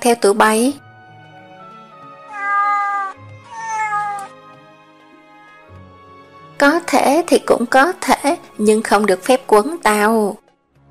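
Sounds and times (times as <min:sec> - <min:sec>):
speech: 0:00.0 - 0:00.8, 0:06.6 - 0:10.4
sand cats meowing: 0:02.1 - 0:04.4, 0:05.2 - 0:05.7.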